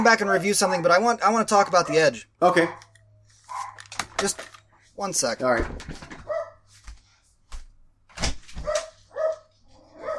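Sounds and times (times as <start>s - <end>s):
speech: 0.0s - 2.9s, 3.5s - 6.1s
dogs barking frantically: 0.3s - 1.0s, 1.7s - 3.9s, 6.2s - 6.6s, 8.6s - 10.1s.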